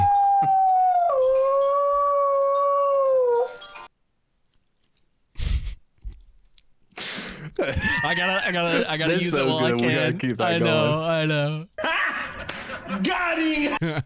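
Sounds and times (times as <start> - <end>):
dog howling: 0.0 - 3.6
laughter: 7.4 - 10.0, 11.8 - 14.0
speech: 7.7 - 11.7, 12.9 - 14.0.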